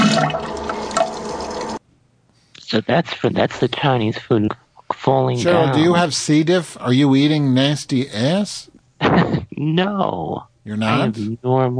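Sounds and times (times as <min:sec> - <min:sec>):
toilet flushing with just water: 0:00.0 - 0:01.8
speech: 0:02.7 - 0:11.7.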